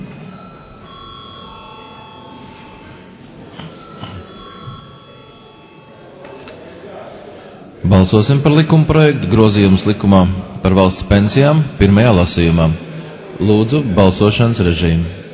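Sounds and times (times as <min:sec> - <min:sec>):
low murmur of a large room: 0:00.0 - 0:15.3
continuous parliamentary electric bell ringing before a vote: 0:00.2 - 0:06.2
speech: 0:07.8 - 0:15.2.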